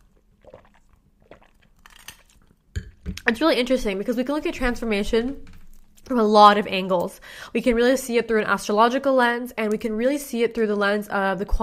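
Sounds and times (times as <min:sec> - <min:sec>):
person sipping a drink from a glass: 0:00.0 - 0:02.5
soft wet slurping and swallowing: 0:00.0 - 0:02.7
speech: 0:03.3 - 0:05.5, 0:06.1 - 0:11.6.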